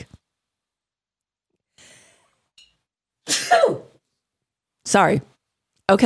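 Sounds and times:
person sneezing: 3.3s - 4.0s
speech: 3.5s - 3.9s, 4.9s - 5.3s, 5.9s - 6.0s.

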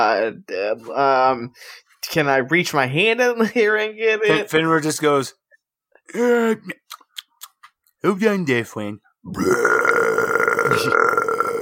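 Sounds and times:
speech: 0.0s - 5.4s, 6.1s - 6.8s, 8.0s - 10.1s, 10.8s - 11.2s
long loud belch from a creature in a fantasy game: 9.3s - 11.5s.

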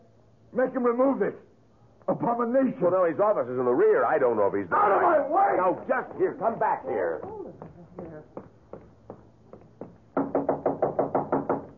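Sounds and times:
speech: 0.5s - 1.5s, 2.1s - 7.4s
knocking on a door: 6.1s - 11.7s.

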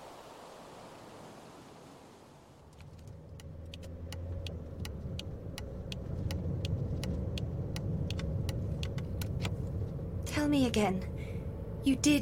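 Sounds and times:
car engine humming as the vehicle drives along: 2.6s - 12.2s
light irregular clicks and rattles: 2.7s - 9.9s
speech: 10.5s - 11.1s, 11.8s - 12.2s.

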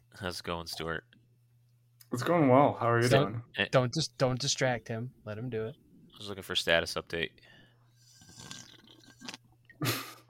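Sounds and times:
speech: 0.2s - 1.1s, 2.1s - 7.5s
slurping beer: 8.0s - 9.5s.

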